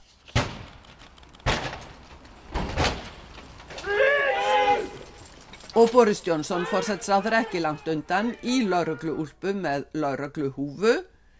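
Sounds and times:
police breaking down doors during a drug raid: 0:00.3 - 0:07.0
police officers shouting: 0:03.7 - 0:05.2, 0:06.3 - 0:09.2
speech: 0:05.8 - 0:11.1.

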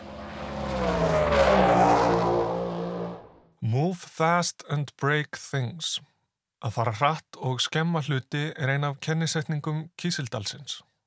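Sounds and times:
car engine revving and accelerating: 0:00.0 - 0:03.5
speech: 0:03.9 - 0:10.9.

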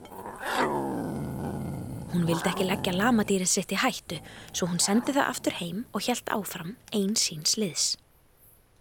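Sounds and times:
mountain lion roaring: 0:00.0 - 0:05.8
mountain lion low rumbling growl: 0:00.0 - 0:06.0
speech: 0:02.2 - 0:08.0.

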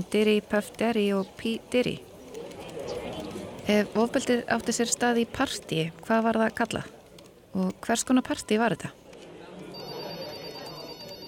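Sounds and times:
speech: 0:00.0 - 0:02.1, 0:03.7 - 0:09.0
dense wash of noise: 0:00.0 - 0:11.2
telephone ringing in the offices of a personal-injury law firm in Billings, Montana: 0:09.7 - 0:11.2.

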